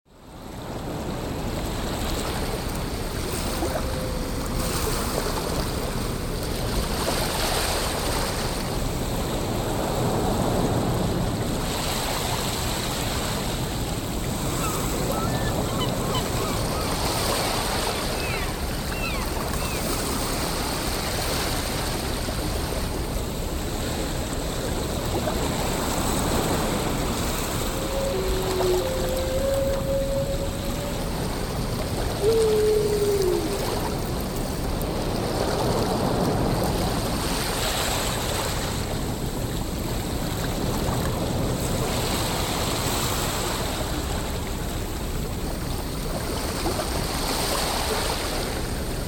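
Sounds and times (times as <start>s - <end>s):
ocean: 0.2s - 49.0s
whales: 3.2s - 6.0s, 14.1s - 21.1s, 25.8s - 34.6s.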